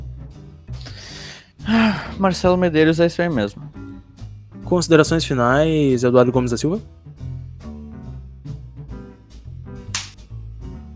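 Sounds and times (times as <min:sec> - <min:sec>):
speech: 0:01.7 - 0:03.7, 0:04.7 - 0:07.0
sharp loud slap: 0:09.9 - 0:10.2.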